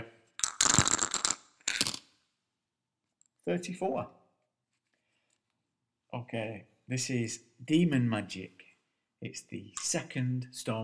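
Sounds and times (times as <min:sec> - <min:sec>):
dice rattling and rolling in a dice cup: 0:00.4 - 0:02.0
speech: 0:03.4 - 0:04.2, 0:06.1 - 0:10.8.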